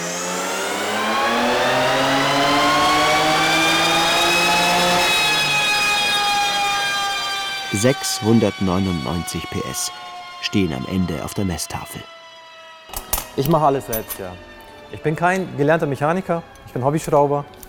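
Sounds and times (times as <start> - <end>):
tuned BMW 3 Series engine revving on a dynamometer: 0.0 - 12.1
speech: 7.8 - 12.2, 13.4 - 17.6.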